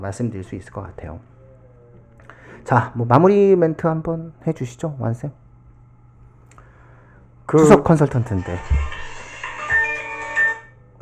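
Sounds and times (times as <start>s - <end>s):
speech: 0.0s - 1.4s, 2.6s - 5.4s, 7.5s - 8.9s
mobile phone ringtone: 8.4s - 10.9s.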